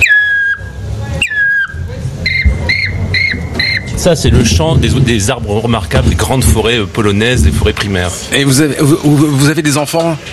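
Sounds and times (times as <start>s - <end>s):
whistled imitation of a black woodpecker call: 0.0s - 4.0s
low rumble: 0.0s - 9.4s
speech: 4.0s - 10.3s.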